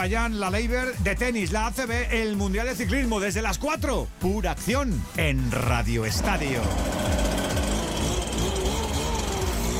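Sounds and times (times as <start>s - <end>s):
speech: 0.0s - 7.3s
leaf blower motor running: 6.2s - 9.7s.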